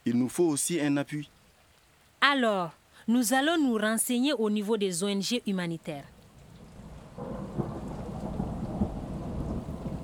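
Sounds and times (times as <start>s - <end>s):
steady rain hissing: 0.0s - 10.0s
speech: 0.1s - 1.4s, 2.3s - 6.2s
deep rolling thunder rumble: 6.4s - 10.0s.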